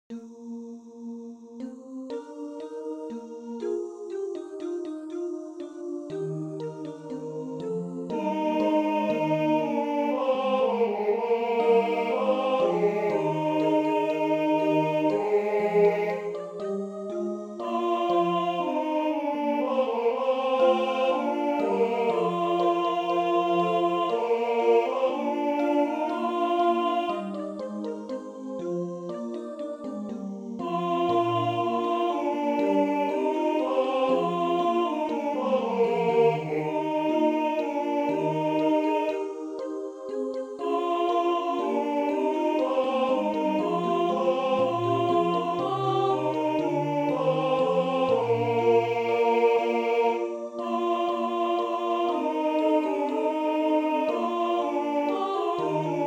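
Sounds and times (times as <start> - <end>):
tenor singing a Sanctus: 1.7 - 56.0.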